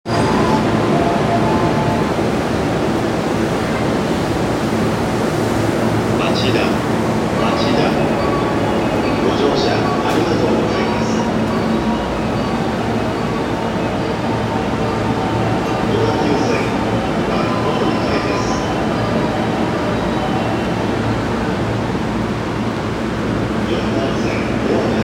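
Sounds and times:
JR Yokohama Line train at Machida: 0.0s - 25.0s.

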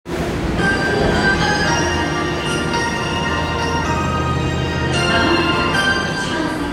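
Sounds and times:
train sounds at Ochiai station on the Tozai Line: 0.1s - 6.7s.

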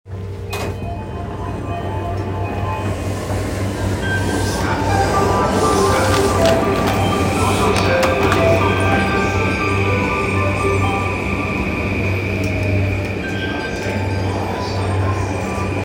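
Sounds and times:
JR Yamanote Line train at Otsuka: 0.1s - 15.8s.

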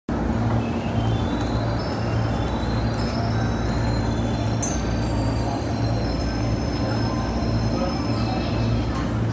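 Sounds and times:
train sounds south of Kami-Nakazato on the Keihin-Tohoku Line: 0.1s - 9.3s.

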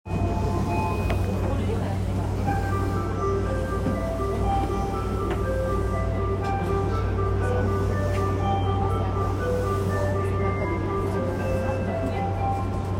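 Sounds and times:
JR Yamanote Line train sounds at Uguisudani: 0.1s - 12.9s.

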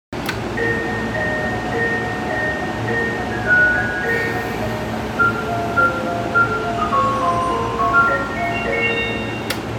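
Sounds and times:
Keihin-Tohoku Line train sounds south of Kamata: 0.2s - 9.7s.

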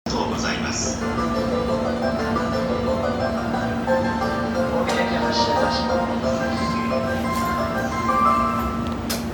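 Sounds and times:
train sounds: 0.1s - 9.3s.

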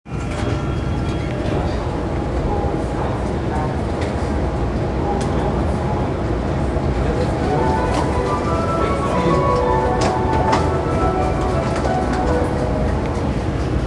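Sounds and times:
Hibiya Line train at Ningyocho north: 0.1s - 13.8s.

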